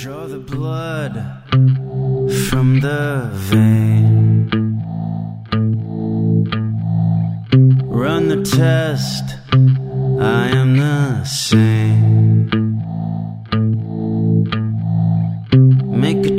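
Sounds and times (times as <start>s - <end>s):
speech: 0.0s - 4.6s, 8.3s - 11.9s
loud song intro with heavily distorted effects-laden guitar: 0.0s - 16.3s.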